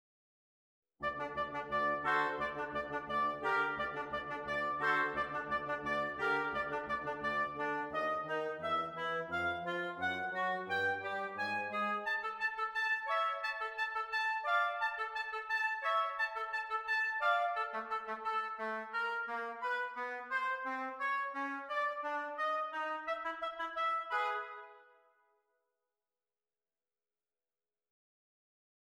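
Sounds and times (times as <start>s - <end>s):
quartet with flute, oboe and bassoon: 1.0s - 24.9s.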